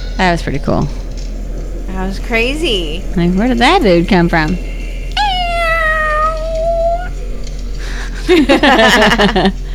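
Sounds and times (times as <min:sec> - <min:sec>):
speech: 0:00.2 - 0:01.0, 0:01.9 - 0:04.7, 0:08.3 - 0:09.6
cat yowling loudly: 0:05.2 - 0:07.3
laughter: 0:07.8 - 0:09.7.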